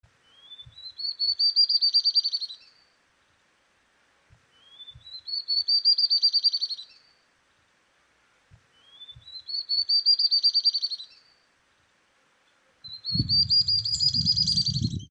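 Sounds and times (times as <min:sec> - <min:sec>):
garrincha chorona singing: 0:00.2 - 0:02.9, 0:04.5 - 0:07.2, 0:08.7 - 0:11.5, 0:12.4 - 0:15.0.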